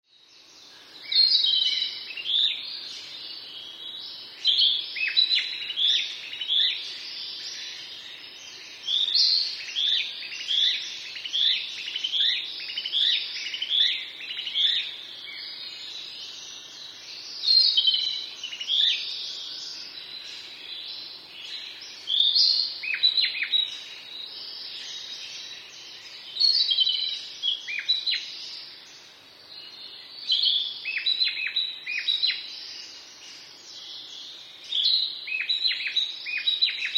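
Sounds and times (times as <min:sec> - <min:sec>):
narcissus flycatcher kibitaki singing: 0:00.1 - 0:36.9.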